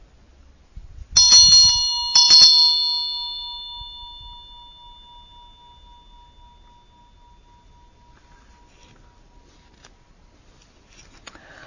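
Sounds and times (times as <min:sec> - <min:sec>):
Tibetan vajra bell ringing: 0:01.2 - 0:09.6.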